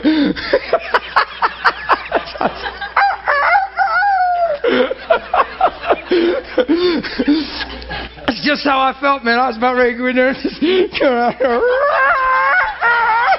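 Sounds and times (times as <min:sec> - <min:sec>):
laughter: 0:00.0 - 0:08.4, 0:10.2 - 0:13.3
speech: 0:00.4 - 0:01.0, 0:08.5 - 0:12.1
rooster crowing: 0:03.0 - 0:04.5.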